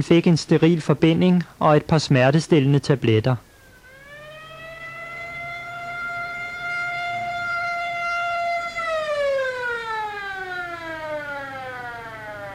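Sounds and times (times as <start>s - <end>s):
speech: 0.0s - 3.5s
passing ambulance siren: 3.6s - 12.5s.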